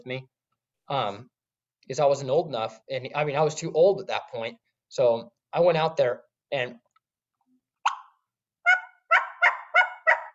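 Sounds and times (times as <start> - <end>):
speech: 0.0 - 6.8
human voice imitating a turkey front end yelp: 7.8 - 10.3.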